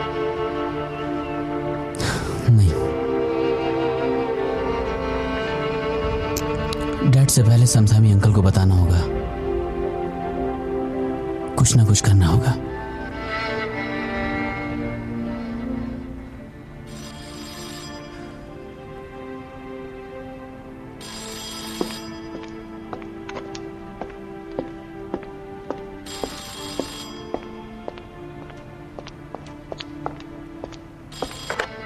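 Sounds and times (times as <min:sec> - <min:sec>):
soft music: 0:00.0 - 0:31.8
speech: 0:07.3 - 0:09.3, 0:11.6 - 0:12.7
telephone ringing with bright bell-like bursts: 0:16.9 - 0:18.6, 0:21.0 - 0:23.0, 0:26.1 - 0:27.6.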